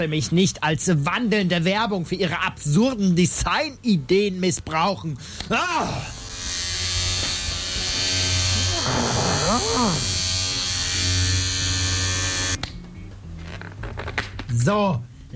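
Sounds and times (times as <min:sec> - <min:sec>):
speech: 0:00.0 - 0:06.6, 0:09.6 - 0:10.2, 0:14.5 - 0:15.3
electric razor buzzing while cutting hair: 0:05.8 - 0:12.6.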